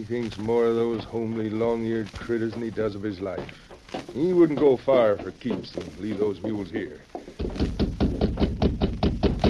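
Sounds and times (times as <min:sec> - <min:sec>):
speech: 0:00.0 - 0:07.7
knocking on a wooden door: 0:03.3 - 0:09.4.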